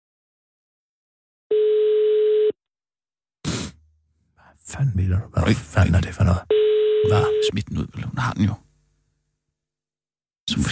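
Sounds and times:
telephone ringback tone while calling someone: 1.5 - 2.6, 6.5 - 7.5
speech: 4.6 - 8.6, 10.5 - 10.7.

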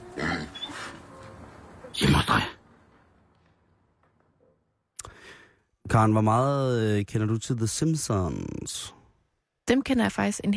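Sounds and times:
hungry pig grunting and snorting: 0.0 - 1.0
speech: 5.9 - 9.0, 9.7 - 10.5.

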